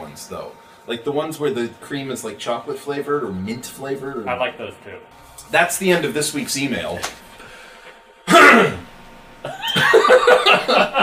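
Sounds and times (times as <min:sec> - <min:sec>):
speech: 0:00.2 - 0:07.2
rough throat clearing from someone with something caught in their throat: 0:08.3 - 0:08.8
laughter: 0:09.4 - 0:11.0.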